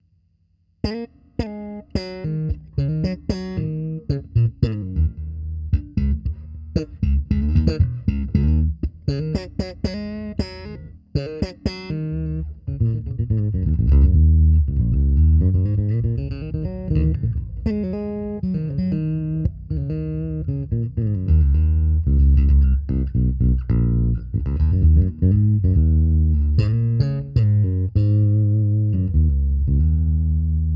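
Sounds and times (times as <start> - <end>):
electric bass: 0.8 - 30.7.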